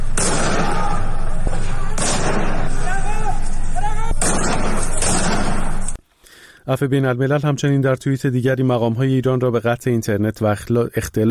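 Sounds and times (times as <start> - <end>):
gunshots of security forces shooting at houses: 0.0 - 6.0
constant noisy outdoor din: 0.0 - 6.2
agitated voices shouting: 0.4 - 4.9
speech: 6.7 - 11.3.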